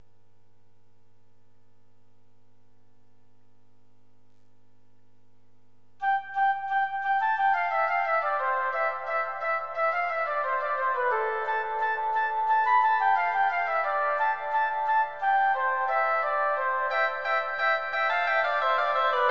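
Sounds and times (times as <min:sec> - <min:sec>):
canon for flute, oboe and clarinet: 0:06.0 - 0:19.2.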